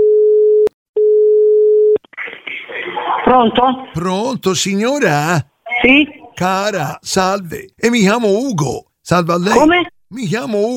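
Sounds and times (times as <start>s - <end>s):
steady telephone line tone: 0.0s - 2.0s
speech: 3.3s - 10.7s.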